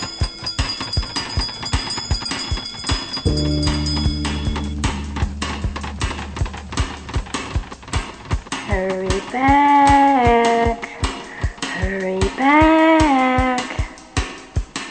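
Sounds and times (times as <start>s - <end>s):
single deep bell ringing: 0.0s - 8.0s
steady rhythmic ticking or clopping: 0.0s - 14.9s
speech: 3.3s - 3.7s, 9.4s - 9.6s.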